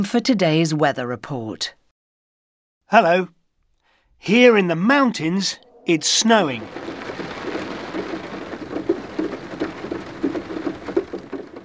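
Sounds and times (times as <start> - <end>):
speech: 0.0 - 1.8, 2.9 - 3.4, 4.2 - 7.0
low rumble of thunder: 4.7 - 11.6
steady rain falling with patters striking a surface: 5.0 - 11.6.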